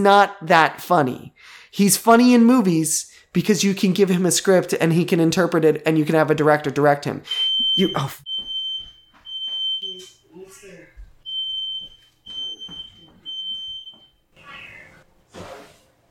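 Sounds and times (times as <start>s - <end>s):
speech: 0.0s - 8.3s
fire alarm beeping with shrill high-pitched tone: 7.3s - 10.3s, 11.2s - 14.3s
cat-like cry: 14.4s - 15.0s.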